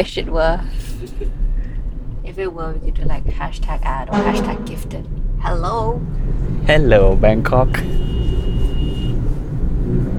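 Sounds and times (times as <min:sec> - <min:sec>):
speech: 0:00.0 - 0:01.4, 0:02.3 - 0:08.1
city traffic heard from inside a car: 0:00.0 - 0:10.1
steady low car engine and road rumble: 0:00.0 - 0:10.1
faint high tone: 0:04.1 - 0:05.0.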